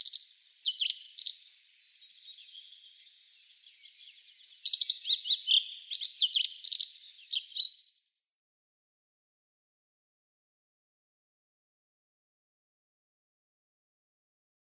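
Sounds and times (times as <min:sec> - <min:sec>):
rock bunting singing high rapid scratchy twittering phrases: 0:00.0 - 0:08.0.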